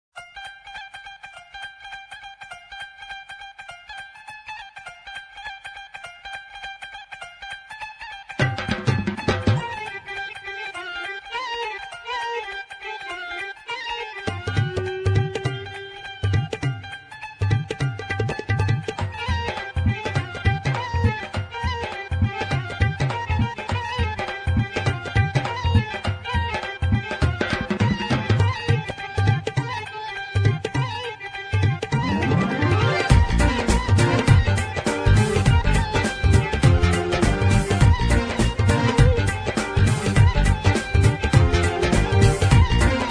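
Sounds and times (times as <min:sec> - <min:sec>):
Indian style music on a Korg Pa80 keyboard: 0:00.1 - 0:43.0.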